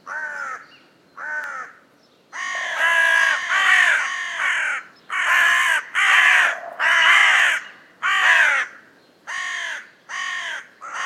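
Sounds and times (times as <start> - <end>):
carrion crow uttering rough drawn-out caws: 0.1 - 0.6, 1.2 - 1.8, 2.4 - 11.0.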